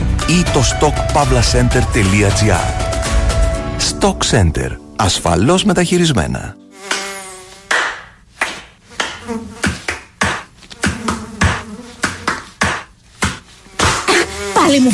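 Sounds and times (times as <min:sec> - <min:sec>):
speech: 0:00.3 - 0:03.0, 0:03.8 - 0:06.6, 0:14.8 - 0:14.9
mosquito whining buzz: 0:06.7 - 0:08.1, 0:08.8 - 0:14.9
rhythmic claps and stamps: 0:07.7 - 0:14.0.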